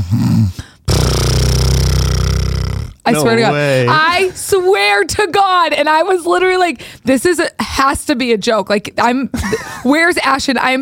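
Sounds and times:
person imitating a man's loud snoring on a flight: 0.0 - 4.0
speech: 3.1 - 10.8.

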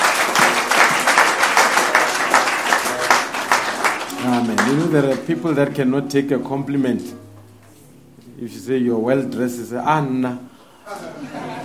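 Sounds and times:
audience clapping: 0.0 - 5.7
speech: 4.5 - 7.2, 8.4 - 11.5
laughter: 10.8 - 11.6.

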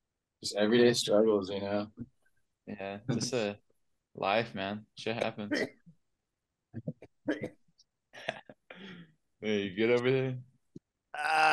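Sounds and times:
speech: 0.4 - 2.1, 2.7 - 3.6, 4.2 - 5.9, 9.4 - 10.5, 11.2 - 11.5
short rough coughs: 5.5 - 5.8, 7.2 - 7.6.

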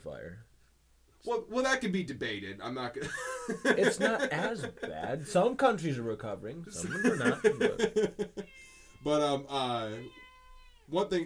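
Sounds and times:
speech: 0.0 - 0.5, 1.2 - 10.2, 10.9 - 11.2
laughter: 3.0 - 5.3, 6.8 - 8.5
cat meowing: 8.4 - 11.1.

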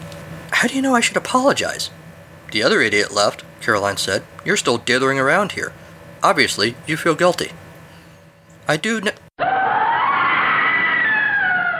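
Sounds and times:
speech: 0.6 - 7.6, 8.7 - 9.2
high-pitched scream from an attic: 9.4 - 11.7.

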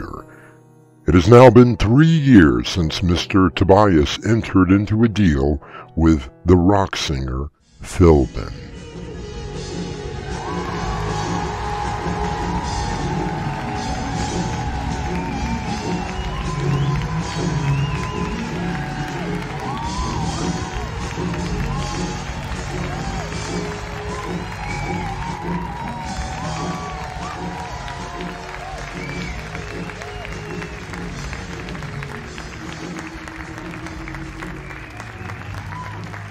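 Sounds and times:
speech: 1.1 - 8.8
large concert crowd applauding: 10.2 - 36.2.

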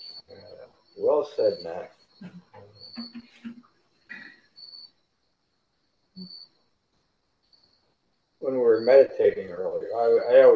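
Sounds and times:
faint murmurs: 0.0 - 4.6, 8.4 - 10.5
crickets chirping at night: 0.0 - 10.5
speech: 1.1 - 3.1, 8.8 - 10.5.

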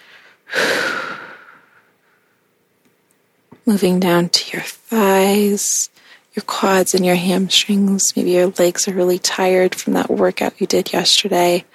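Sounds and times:
deep breath in and out during a guided yoga and stretching session: 0.0 - 2.5
speech: 3.7 - 11.7.

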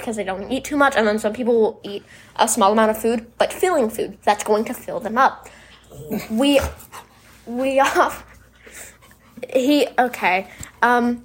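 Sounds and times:
speech: 0.0 - 11.2
puppy panting: 5.8 - 11.2.

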